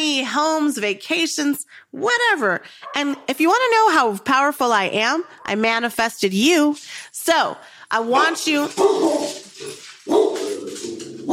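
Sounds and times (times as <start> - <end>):
speech: 0.2 - 11.0
dog barking and yelping: 8.7 - 11.3.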